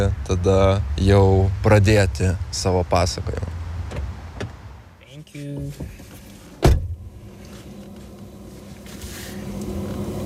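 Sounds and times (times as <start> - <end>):
speech: 0.0 - 3.6, 5.4 - 6.0
door shutting thud: 6.6 - 7.0.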